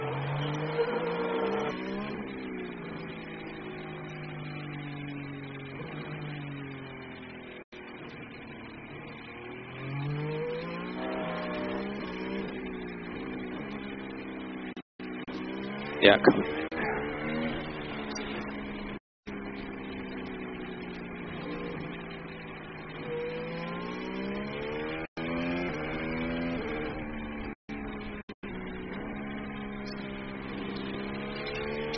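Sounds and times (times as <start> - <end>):
race car engine revving as the driver slows for a red flag: 0.0 - 31.9
speech: 16.0 - 16.6.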